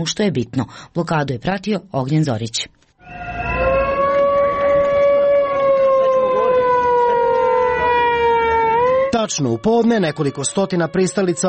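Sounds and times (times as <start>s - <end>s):
speech: 0.0s - 3.2s, 9.3s - 11.4s
sirens wailing at an opposition street protest: 3.0s - 11.4s.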